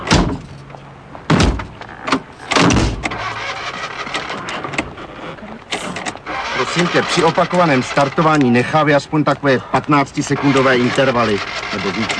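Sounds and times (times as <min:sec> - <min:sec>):
car door slammed shut hard with a rattle: 0:00.0 - 0:00.5, 0:01.3 - 0:03.2
steady mechanical hum from the vehicle: 0:00.0 - 0:12.1
speech: 0:06.8 - 0:12.1.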